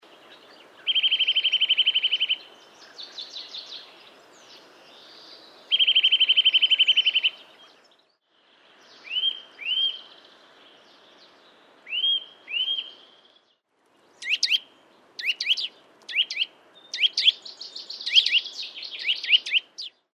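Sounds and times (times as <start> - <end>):
Eurasian nuthatch calls: 0.9 - 2.4, 5.7 - 7.4, 8.9 - 10.1, 11.9 - 13.1, 14.2 - 14.6, 15.2 - 20.0.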